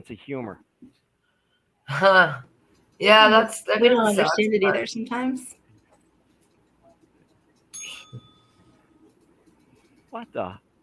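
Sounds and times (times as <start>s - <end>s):
speech: 0.0s - 1.0s, 1.9s - 5.6s, 10.1s - 10.6s
bright digital bell ding: 7.8s - 8.6s.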